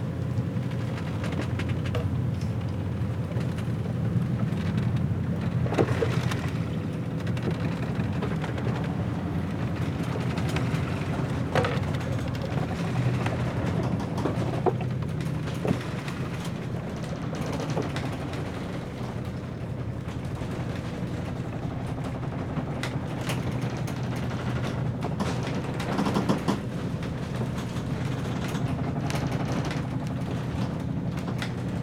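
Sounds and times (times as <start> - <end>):
low rumble of sea and wind aboard a schooner: 0.0 - 31.8
schooner hull creaking: 0.1 - 31.8.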